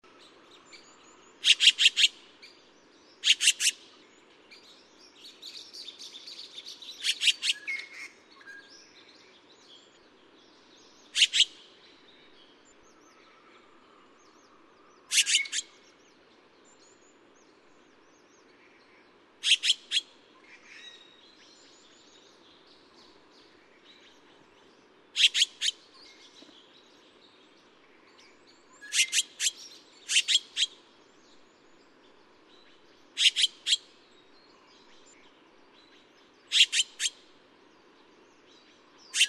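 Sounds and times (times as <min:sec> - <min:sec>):
Taiwan blue magpie calling: 0:01.4 - 0:02.2, 0:03.2 - 0:03.8, 0:11.1 - 0:11.6, 0:15.0 - 0:15.8, 0:19.4 - 0:21.0, 0:25.2 - 0:26.5, 0:28.7 - 0:30.8, 0:33.2 - 0:33.8, 0:36.5 - 0:37.2, 0:39.1 - 0:39.2.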